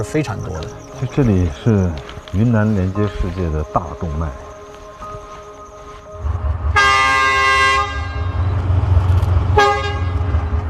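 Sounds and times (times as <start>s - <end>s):
speech: 0.0s - 4.5s
steady low diesel locomotive engine rumble: 0.0s - 10.6s
front locomotive horn blast at Zhicun station, Yunnan, China: 6.6s - 10.6s
rear locomotive horn toot signaling readiness to depart: 6.7s - 8.6s, 9.5s - 10.6s.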